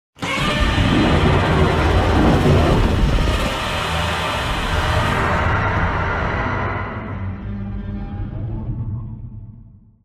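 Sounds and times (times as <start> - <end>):
monster roar: 0.2 - 7.7.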